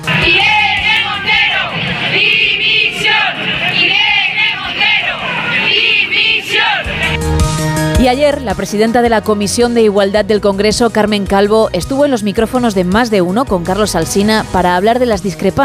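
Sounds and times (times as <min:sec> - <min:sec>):
large protest crowd shouting and chanting: 0:00.0 - 0:07.8
speech: 0:08.0 - 0:15.6.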